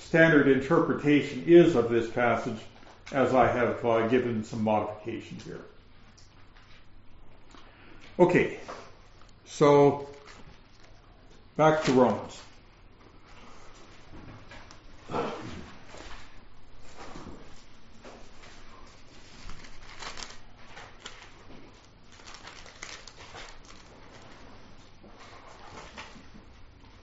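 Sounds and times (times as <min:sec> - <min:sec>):
speech: 0:00.1 - 0:05.7, 0:08.2 - 0:08.8, 0:09.5 - 0:10.1, 0:11.6 - 0:12.5, 0:15.1 - 0:15.5
thin Bible paper pages rustling and crinkling in dry Colorado weather: 0:19.0 - 0:24.4.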